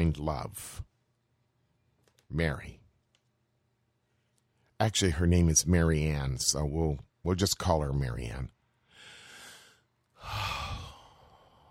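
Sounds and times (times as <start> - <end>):
speech: 0.0 - 0.9, 2.3 - 2.8, 4.8 - 8.6
deep breath: 8.7 - 11.6.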